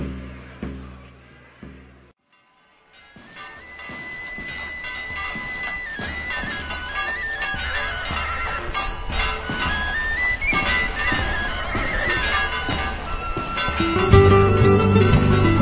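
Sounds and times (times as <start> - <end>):
busy outdoor noise: 0.0 - 15.5
clip-clop of horse hooves: 3.0 - 15.5
horse whinnying: 7.3 - 13.6.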